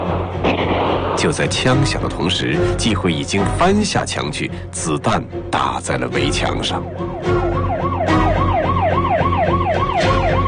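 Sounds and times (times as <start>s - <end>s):
speech: 0.3s - 7.4s
police siren yelping in rising-and-falling sweeps: 6.6s - 10.4s.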